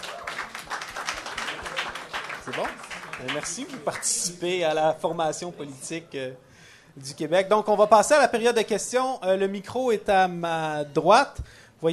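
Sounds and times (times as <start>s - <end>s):
audience applauding after a debate on secularism: 0.0s - 4.4s
speech: 2.5s - 11.9s.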